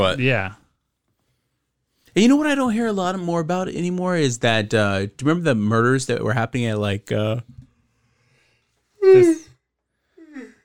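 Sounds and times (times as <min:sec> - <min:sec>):
speech: 0:00.0 - 0:00.6, 0:02.2 - 0:07.6, 0:09.0 - 0:09.5
person yawning: 0:09.0 - 0:09.5.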